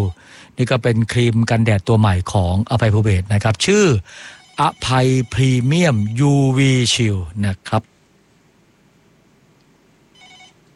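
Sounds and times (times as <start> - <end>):
low steady hiss: 0.0 - 10.7
speech: 0.1 - 7.9
telephone ringing as a listener calls in: 4.2 - 6.4, 10.2 - 10.6.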